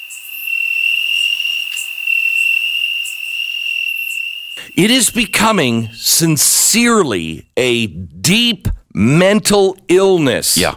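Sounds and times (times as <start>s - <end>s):
crickets chirping: 0.0s - 6.0s
speech: 4.7s - 10.7s.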